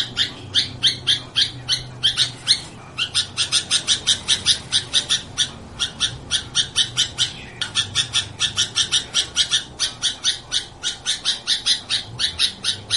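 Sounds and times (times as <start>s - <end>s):
sooty-headed bulbul giving harsh broadband chirps: 0.0s - 12.9s.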